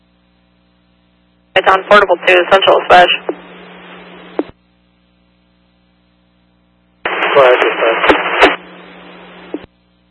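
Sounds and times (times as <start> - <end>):
garbled voice over radio: 1.6 - 3.4, 7.1 - 8.6
speech: 1.6 - 3.5
hissing two-way radio static from a portable radio unit: 1.6 - 4.6, 7.1 - 9.7.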